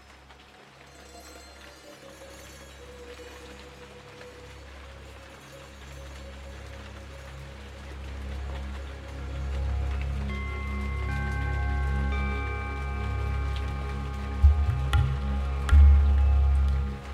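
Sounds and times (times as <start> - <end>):
heavy rain falling on stone: 0.0 - 17.1.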